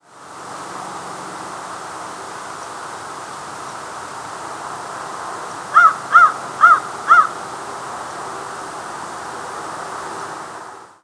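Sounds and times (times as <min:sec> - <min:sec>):
background hiss: 0:00.0 - 0:11.0
American crow cawing: 0:05.7 - 0:07.4.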